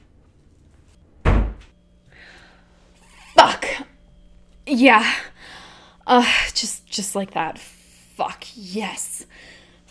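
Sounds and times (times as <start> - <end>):
door shutting with a solid heavy thud: 1.2 - 1.8
speech: 4.7 - 5.3, 6.1 - 9.5.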